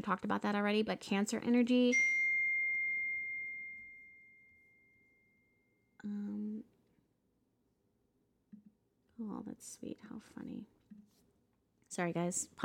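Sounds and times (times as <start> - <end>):
speech: 0.0 - 2.2, 9.6 - 10.8, 11.9 - 12.6
electronic phone notification chime: 1.9 - 5.1.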